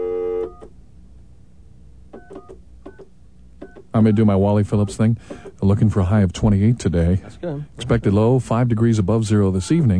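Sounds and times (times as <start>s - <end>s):
steady multi-pitched telephone line tone on a brand-new phone system: 0.0s - 0.7s
telephone line clicks and beeps during an outgoing call attempt: 2.2s - 3.9s
speech: 3.9s - 9.9s.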